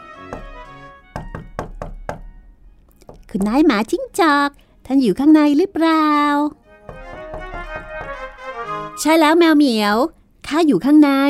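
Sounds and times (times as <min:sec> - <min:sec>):
sustained tonal background: 0:00.0 - 0:04.8, 0:05.5 - 0:09.7
knocking on a door: 0:00.3 - 0:02.4, 0:03.1 - 0:03.7, 0:06.9 - 0:08.3
speech: 0:03.3 - 0:06.6, 0:09.0 - 0:11.2.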